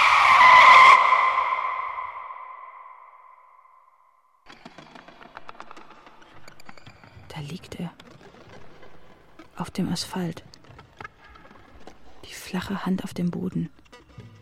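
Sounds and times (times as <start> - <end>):
car skidding with a piercing tire squeal: 0.0 - 3.0
speech: 7.4 - 8.1, 9.6 - 10.5, 12.5 - 13.8.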